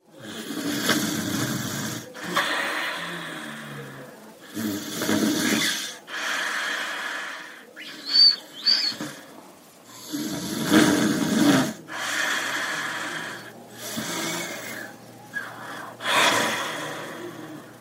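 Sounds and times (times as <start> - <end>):
grandmother snoring with raspy snorting inhales: 0.1 - 7.6, 9.9 - 17.7.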